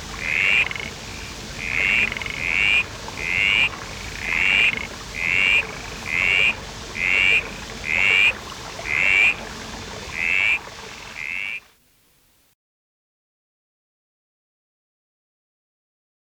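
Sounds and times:
steady background hiss: 0.0 - 12.6
Common mist frog Litoria rheocola calling: 0.2 - 9.4, 10.1 - 11.7.

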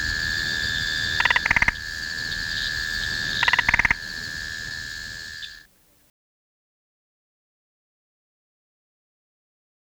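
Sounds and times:
spotted marsh frog Limnodynastes tasmaniensis calling in clicking bursts: 0.0 - 5.7.

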